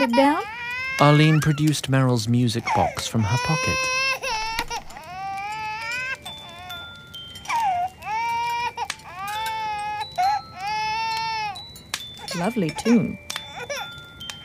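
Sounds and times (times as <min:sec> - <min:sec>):
speech: 0:00.0 - 0:04.1, 0:12.4 - 0:13.3
baby wailing: 0:00.0 - 0:06.9, 0:07.5 - 0:11.6.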